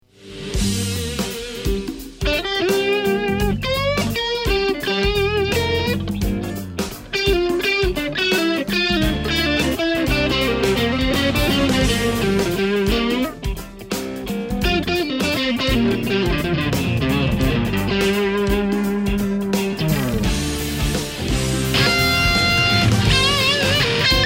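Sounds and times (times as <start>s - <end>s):
Fender Vibro Champ guitar amplifier: 0.0s - 24.2s.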